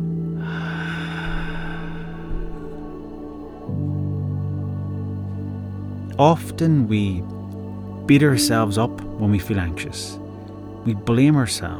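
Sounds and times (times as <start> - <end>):
steady sustained musical drone: 0.0 - 11.7
slow deep exhale: 0.3 - 3.6
speech: 6.2 - 7.4, 8.1 - 10.2, 10.8 - 11.7.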